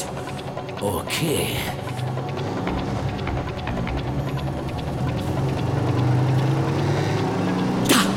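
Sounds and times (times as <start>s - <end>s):
speech: 0.8s - 2.4s
car engine accelerating on a mountain road: 1.9s - 8.1s.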